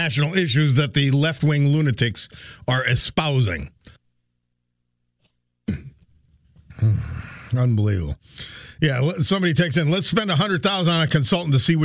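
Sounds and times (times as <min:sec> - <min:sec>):
speech: 0:00.0 - 0:03.8, 0:06.8 - 0:11.8
man coughing or clearing throat from a tickle: 0:05.6 - 0:06.1.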